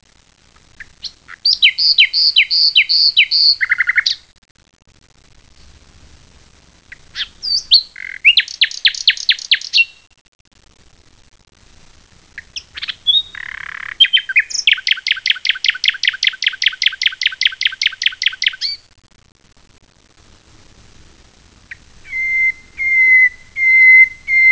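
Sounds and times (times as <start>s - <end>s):
nightingale singing: 0.8s - 4.2s, 6.9s - 10.1s, 12.4s - 18.8s, 21.7s - 24.5s.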